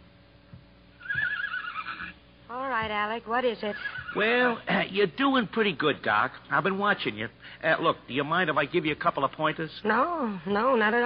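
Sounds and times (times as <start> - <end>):
horse whinnying in a stable shed: 1.0 - 2.2, 3.7 - 4.6
speech: 2.5 - 11.0.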